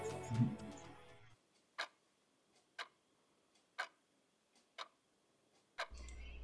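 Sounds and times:
clock ticking: 1.4 - 6.3.

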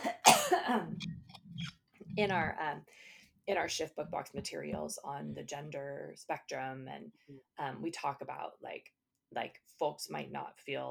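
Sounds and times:
person clearing throat: 0.0 - 1.4
speech: 2.2 - 10.8.

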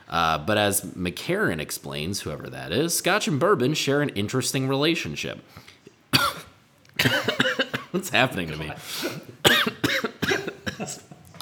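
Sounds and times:
speech: 0.1 - 5.8, 7.9 - 9.8, 10.8 - 11.1
harsh coughs: 6.1 - 8.0, 8.9 - 11.2.

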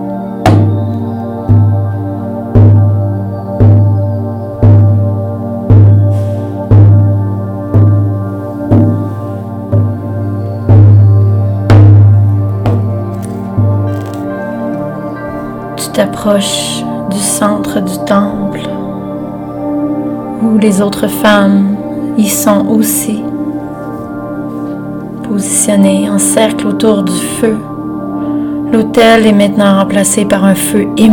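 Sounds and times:
deep resonant drum beating: 0.4 - 2.0, 2.6 - 4.0, 4.6 - 13.9
speech: 16.0 - 18.7, 20.5 - 23.3, 25.4 - 27.7, 28.7 - 31.1.

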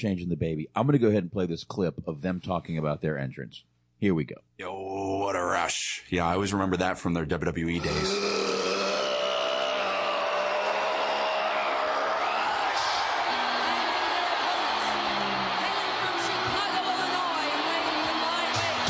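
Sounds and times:
speech: 0.0 - 8.4
wrestling arena crowd roaring at entrance: 7.8 - 18.8
crowd whoops and yells: 8.9 - 18.8.

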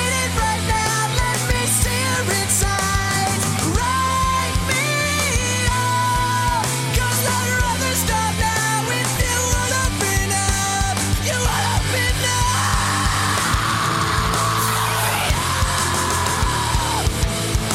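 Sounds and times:
loud dense rock track: 0.0 - 17.7
harsh screamed vocal: 11.5 - 17.2.

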